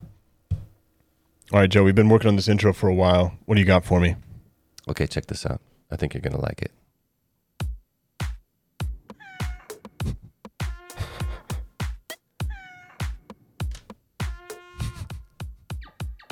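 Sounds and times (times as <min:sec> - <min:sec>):
speech: 0:01.5 - 0:04.2, 0:04.8 - 0:06.8
sharp punchy thumps: 0:07.6 - 0:16.3
cat meowing: 0:09.1 - 0:09.9, 0:12.4 - 0:13.2
trumpet blasts: 0:10.6 - 0:11.5, 0:14.2 - 0:15.2
high squealing elk bugle: 0:14.3 - 0:15.2.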